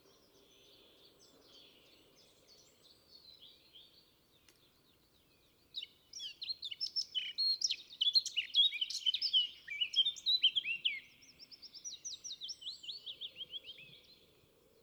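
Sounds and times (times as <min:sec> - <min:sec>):
Eurasian blackcap Sylvia atricapilla in full song: 0:05.8 - 0:14.0.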